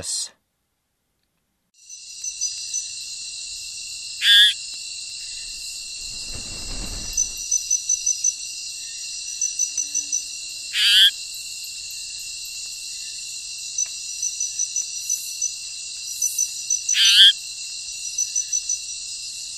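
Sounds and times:
Eleutherodactylus conspicillatus frogs calling in the Ecuadorian Amazon: 4.2s - 5.4s, 9.5s - 11.3s, 16.2s - 17.4s.

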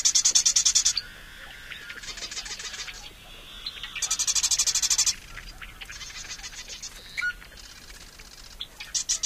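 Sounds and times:
marsh wren singing rattling trills and chattering clicks: 0.0s - 9.2s.

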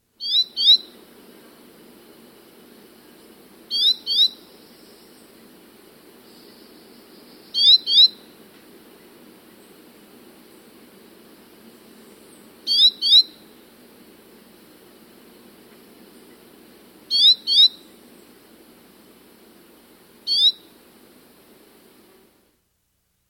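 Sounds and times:
Tawny-capped Euphonia calling in South America: 0.2s - 1.0s, 3.1s - 5.3s, 6.2s - 8.3s, 12.0s - 13.5s, 17.1s - 18.0s, 20.2s - 20.8s.

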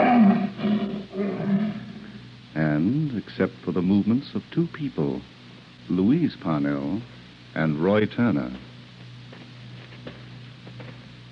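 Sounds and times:
untrained lion roaring in protest: 0.0s - 2.2s
speech: 3.3s - 8.7s.

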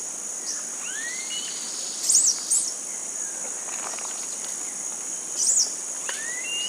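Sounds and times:
insect drone: 0.0s - 6.6s
faint rising whistle from another bird: 6.2s - 6.6s.

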